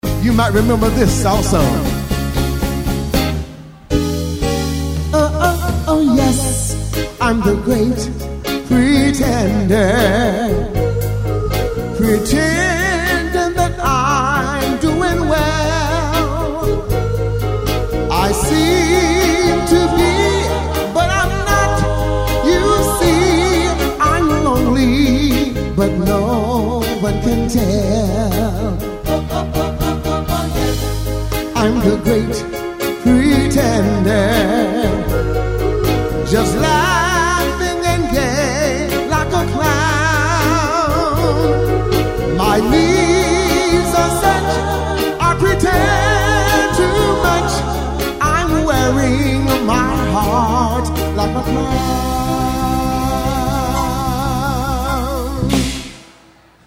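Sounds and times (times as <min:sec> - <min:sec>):
wedding band playing a song: 0:00.0 - 0:56.6.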